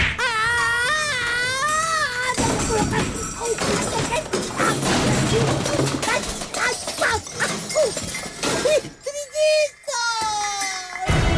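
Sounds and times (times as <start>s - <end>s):
wavering cries of a person falling down a hillside: 0.2s - 11.3s
comic thumps crashes and smashes of a person falling down a hillside: 2.3s - 9.0s.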